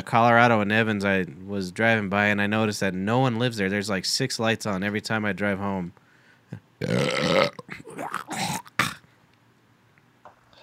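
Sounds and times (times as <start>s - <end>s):
speech: 0.0s - 8.6s
shorter throaty bursts and gulps: 6.6s - 9.1s
loud drawn-out burp: 6.8s - 9.1s.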